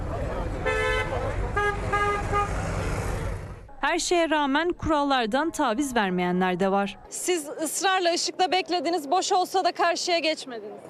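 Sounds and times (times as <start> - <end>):
low rumble of city road noise: 0.0 - 7.2
car horns honking in city traffic: 0.6 - 3.0
speech: 3.9 - 10.8.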